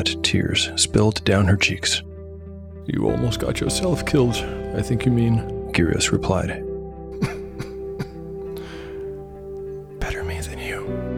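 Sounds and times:
speech: 0:00.0 - 0:02.1, 0:02.9 - 0:07.3
person coughing: 0:07.2 - 0:08.8
soft raspy exhale: 0:08.5 - 0:09.1.

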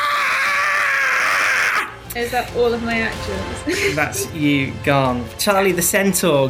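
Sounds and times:
person vocally imitating a serpent's scream: 0:00.0 - 0:02.0
speech: 0:02.2 - 0:06.4.

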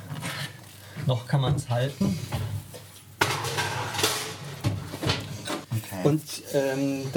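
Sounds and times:
speech: 0:01.1 - 0:02.6, 0:06.0 - 0:07.1
baking dish clattering against metal as slid into the oven: 0:03.2 - 0:05.6.

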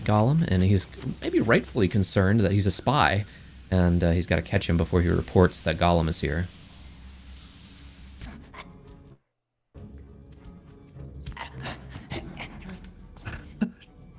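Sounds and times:
speech: 0:00.1 - 0:06.6
labored raspy panting breaths: 0:11.3 - 0:13.7.

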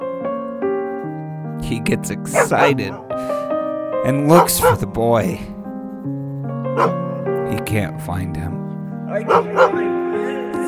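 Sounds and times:
speech: 0:01.6 - 0:03.4, 0:04.0 - 0:05.6, 0:06.8 - 0:10.4
dog barking: 0:02.0 - 0:07.7, 0:09.1 - 0:10.4
dog whimpering yip: 0:06.8 - 0:07.0, 0:09.3 - 0:09.7.

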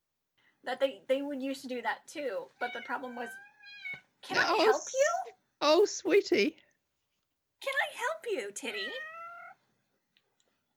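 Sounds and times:
speech: 0:00.6 - 0:06.6, 0:07.6 - 0:09.1
male cat meowing: 0:02.6 - 0:04.8, 0:08.6 - 0:09.6.

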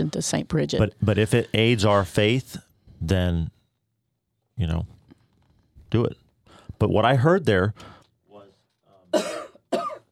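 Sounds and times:
speech: 0:00.0 - 0:03.6, 0:04.6 - 0:04.9, 0:05.9 - 0:06.2, 0:06.8 - 0:08.0
woman coughing into a live microphone: 0:09.1 - 0:10.1.

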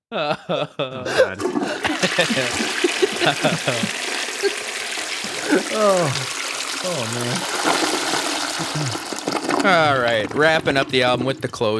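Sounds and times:
laughter: 0:00.1 - 0:04.6
speech: 0:00.1 - 0:04.7, 0:05.4 - 0:07.8, 0:08.6 - 0:09.0, 0:09.6 - 0:11.7
voices chuckling: 0:00.4 - 0:06.3
toilet flushing: 0:01.3 - 0:11.7.

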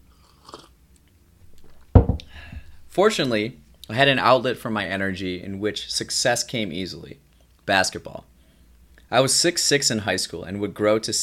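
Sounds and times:
person sipping coffee: 0:00.0 - 0:00.8
speech: 0:03.0 - 0:08.3, 0:09.1 - 0:11.2.

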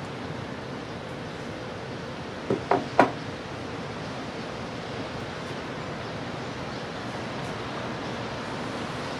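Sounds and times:
ocean surf waves breaking: 0:00.0 - 0:09.1
knocking thuds: 0:02.5 - 0:03.2.

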